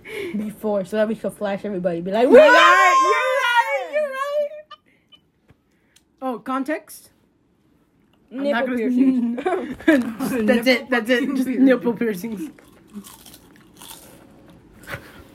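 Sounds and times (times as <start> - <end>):
speech: 0.3 - 3.2, 6.5 - 7.2, 8.3 - 13.4
crunchy chips being bitten and chewed: 12.5 - 14.9.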